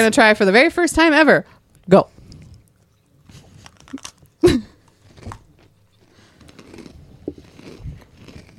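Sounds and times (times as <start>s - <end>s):
speech: 0.0s - 2.2s
crunchy chewing of freeze-dried ice cream: 2.2s - 8.5s.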